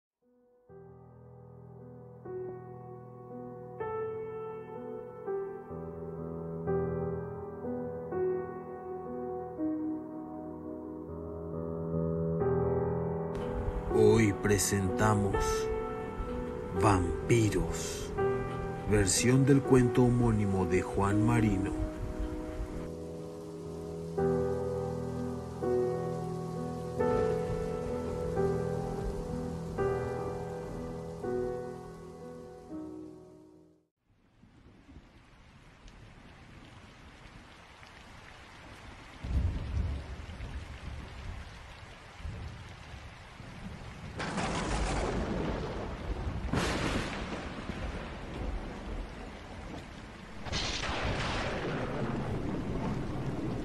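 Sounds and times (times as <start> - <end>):
tonal music: 0.6 - 33.8
steady loud rain: 13.3 - 32.6, 34.2 - 53.6
speech: 14.4 - 15.7, 16.8 - 18.1, 18.9 - 22.0
howling wind through bare trees: 21.4 - 32.1, 34.1 - 53.6
sharp thunder cracks: 44.1 - 49.1, 50.3 - 53.6.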